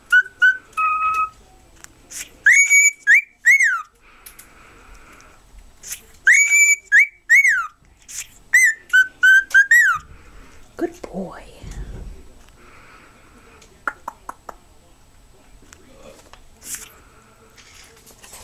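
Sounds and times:
cockatiel singing clear whistles: 0.1 - 1.4, 2.4 - 3.9, 6.3 - 7.8, 8.5 - 10.0.

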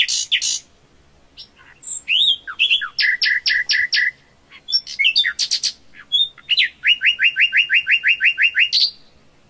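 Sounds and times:
common nightingale singing varied phrases: 0.0 - 9.3.

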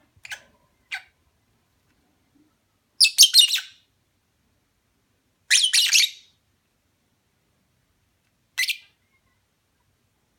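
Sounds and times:
lovebird mating call chirps: 3.0 - 3.9, 5.5 - 6.3, 8.6 - 9.0.

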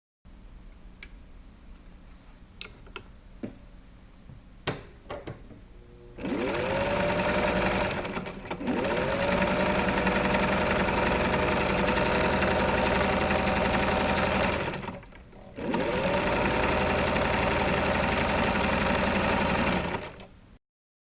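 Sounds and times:
sewing machine: 6.2 - 20.3.

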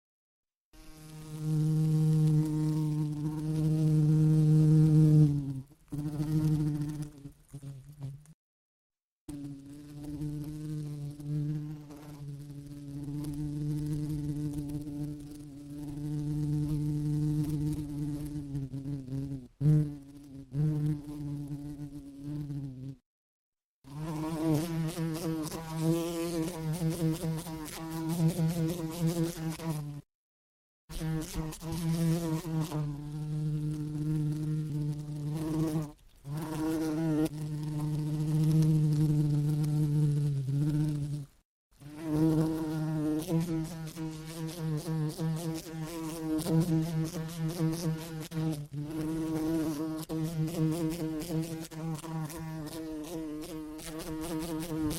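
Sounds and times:
bee buzzing in flight: 0.8 - 8.4, 9.3 - 23.0, 23.8 - 30.1, 30.9 - 54.9.

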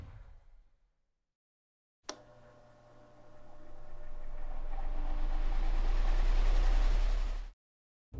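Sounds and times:
house sound effect: 4.0 - 7.6.

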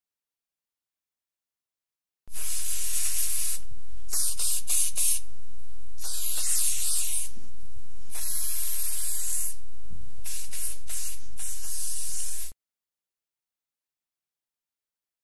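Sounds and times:
paint spray: 2.3 - 5.3, 6.0 - 7.4, 8.1 - 9.6, 10.2 - 12.6.

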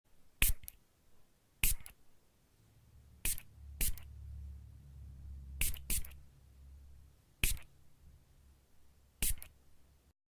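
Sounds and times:
perfume spray: 1.6 - 1.9, 3.2 - 4.1, 5.6 - 6.2, 7.4 - 7.7, 9.2 - 9.5.

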